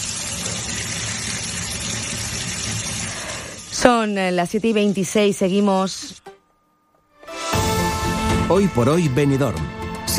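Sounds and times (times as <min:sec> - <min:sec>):
cold water running from a tap: 0:00.0 - 0:05.2
speech: 0:03.8 - 0:06.3, 0:08.5 - 0:10.1.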